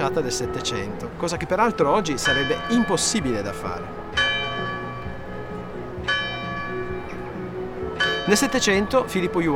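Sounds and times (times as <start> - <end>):
speech: 0.0 - 4.0, 8.3 - 9.5
church bells ringing in a city square: 2.2 - 9.5.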